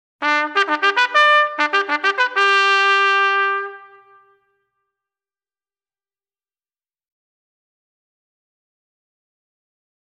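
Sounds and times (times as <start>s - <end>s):
ceremonial band call music: 0.2s - 4.2s.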